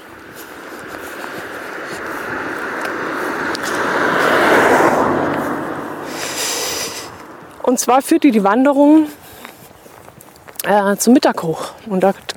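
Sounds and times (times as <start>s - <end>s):
car passing by: 0.0s - 7.9s
speech: 7.8s - 9.2s, 10.6s - 12.3s.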